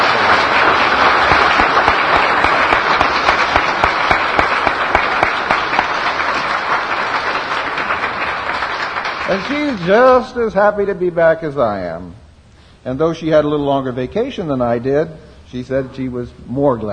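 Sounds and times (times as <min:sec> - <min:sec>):
large audience applauding at a service: 0:00.0 - 0:10.2
speech: 0:09.5 - 0:12.2, 0:12.8 - 0:16.9.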